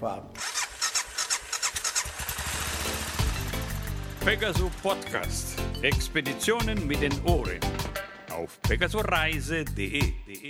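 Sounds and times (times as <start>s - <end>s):
speech: 0.0s - 0.4s, 4.2s - 7.8s, 8.4s - 10.4s
motorcycle engine starting: 0.4s - 5.6s.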